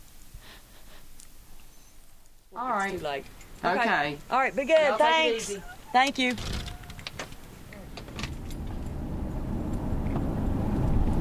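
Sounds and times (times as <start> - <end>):
truck engine and road rumble: 1.0 - 11.1
speech: 2.6 - 6.6
clicks and thumps of someone getting into a truck: 6.0 - 9.0
keys jingling: 6.6 - 9.9.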